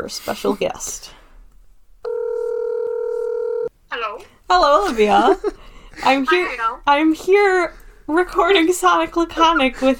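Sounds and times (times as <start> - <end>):
speech: 0.0 - 1.2, 4.2 - 9.9
electronic telephone ringback tone of an outgoing call: 2.0 - 3.7.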